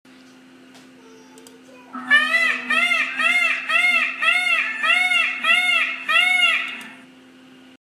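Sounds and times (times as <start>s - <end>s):
peacock call: 2.0s - 7.0s.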